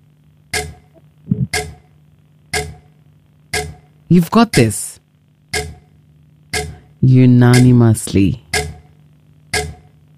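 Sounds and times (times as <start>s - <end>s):
countdown clock ticking: 0.5s - 1.9s, 2.5s - 4.9s, 5.5s - 10.0s
speech: 4.1s - 5.0s, 7.0s - 8.4s.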